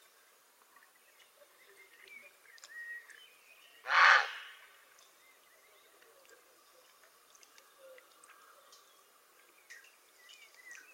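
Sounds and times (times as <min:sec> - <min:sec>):
small birds faint thin whistles: 0:00.8 - 0:10.9
Grey heron harsh hoarse croak: 0:03.8 - 0:04.6.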